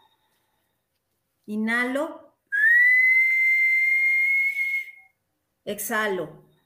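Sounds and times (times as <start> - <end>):
speech: 1.5 - 2.2, 5.7 - 6.5
human whistling through rounded lips: 2.5 - 5.2.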